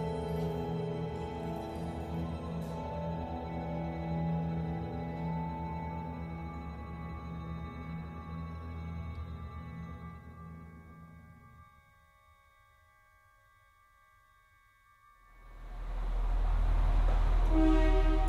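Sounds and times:
steady tonal hum: 0.0s - 18.2s
train travelling along the railway from County Carlow toward County Cavan: 15.5s - 18.2s.

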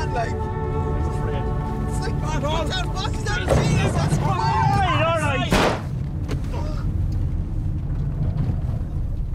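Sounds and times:
speech: 0.1s - 0.5s
steady low rumble: 0.1s - 9.3s
gunshot fired accidentally inside a car: 5.5s - 5.9s.

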